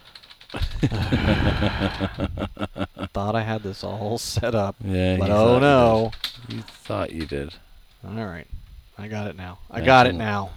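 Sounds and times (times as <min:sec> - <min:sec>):
typing on a computer keyboard: 0:00.0 - 0:01.6, 0:05.9 - 0:07.4
laughter: 0:00.6 - 0:07.0
speech: 0:00.8 - 0:10.5.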